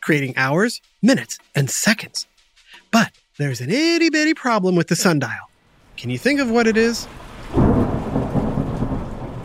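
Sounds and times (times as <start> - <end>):
speech: 0.0 - 7.6
steady hiss of falling rain: 5.7 - 9.4
deep roll of thunder rumbling: 5.8 - 9.4.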